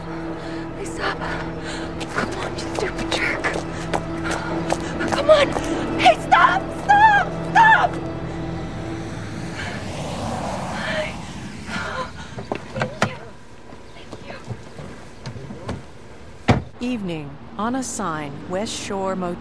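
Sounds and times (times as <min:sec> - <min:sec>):
speech: 0:00.1 - 0:03.3, 0:17.1 - 0:19.3
oncoming car driving past: 0:03.6 - 0:14.0.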